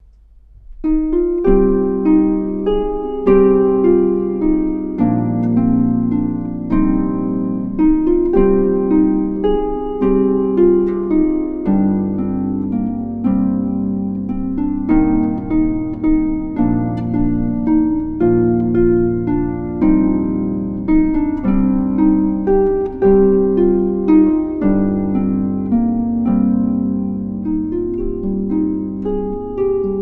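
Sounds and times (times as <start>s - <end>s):
solo harp playing a Welsh Christmas carol: 0.7s - 29.9s.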